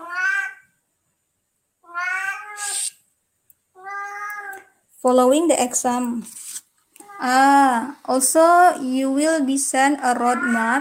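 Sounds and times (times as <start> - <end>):
cat meowing: 0.0 - 0.7, 1.8 - 2.9, 3.7 - 4.7, 10.2 - 10.7
speech: 5.0 - 6.4, 7.2 - 10.7.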